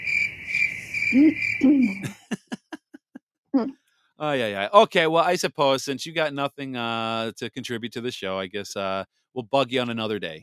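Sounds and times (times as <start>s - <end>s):
crickets chirring: 0.0s - 2.0s
speech: 1.1s - 2.2s, 3.6s - 10.4s
laughter: 1.6s - 3.2s, 4.2s - 10.2s.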